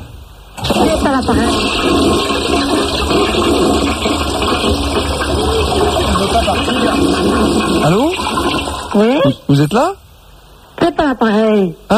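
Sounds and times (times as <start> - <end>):
toilet flushing: 0.0 - 9.5
speech: 1.0 - 2.4, 6.3 - 10.0, 10.8 - 11.9.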